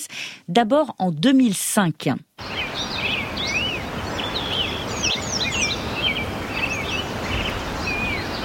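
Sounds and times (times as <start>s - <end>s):
speech: 0.0s - 2.3s
flowing river water: 2.4s - 8.4s
many birds singing and chirping: 2.4s - 8.4s.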